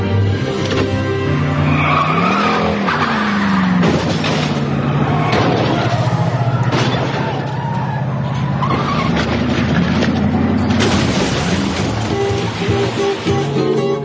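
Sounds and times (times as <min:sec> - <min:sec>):
car engine revving as the car pulls away: 0:00.2 - 0:13.9
tires screeching: 0:00.2 - 0:14.0.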